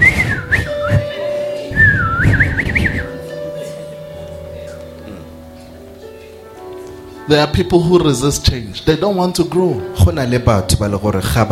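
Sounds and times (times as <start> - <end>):
person whistling warbling phrases with sliding pitch: 0.0 - 3.4
speech: 7.3 - 11.5.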